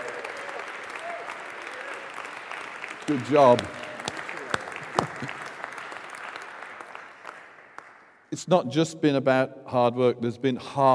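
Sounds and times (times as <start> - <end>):
church congregation applauding: 0.0 - 8.3
speech: 3.1 - 3.8, 8.4 - 10.9.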